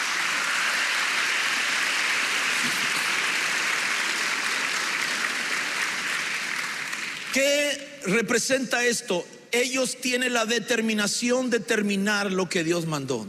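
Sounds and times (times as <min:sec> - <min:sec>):
large audience applauding: 0:00.0 - 0:07.6
speech: 0:07.4 - 0:13.2.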